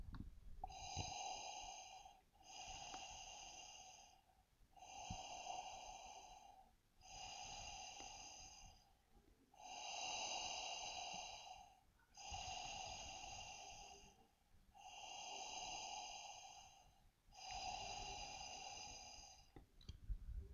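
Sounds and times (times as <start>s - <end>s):
breathing: 0.6s - 20.5s.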